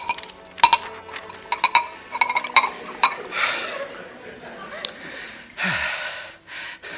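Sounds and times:
glass clinking: 0:00.0 - 0:04.1
laughter: 0:00.9 - 0:06.9.

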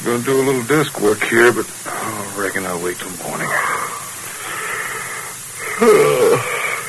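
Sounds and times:
speech: 0:00.0 - 0:03.7, 0:05.8 - 0:06.4
person yawning with breathy voiced groan: 0:05.6 - 0:06.8.

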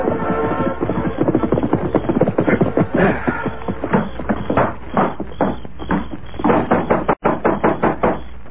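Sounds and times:
loud knocking on a sheriff's wooden door: 0:00.1 - 0:08.3.

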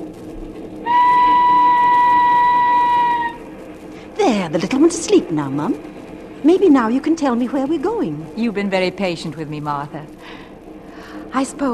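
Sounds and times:
train rumbling as it gets underway in London: 0:00.0 - 0:11.7
train whistle blowing: 0:00.8 - 0:03.4
speech: 0:04.4 - 0:10.4, 0:11.4 - 0:11.7.

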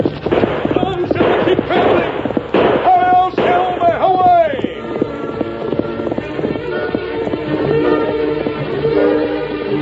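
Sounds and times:
horse hooves pounding in a fast gallop: 0:00.0 - 0:09.8.

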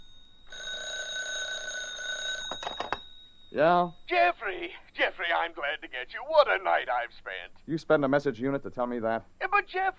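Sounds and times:
telephone ringing: 0:00.0 - 0:07.4
speech: 0:03.5 - 0:09.9.

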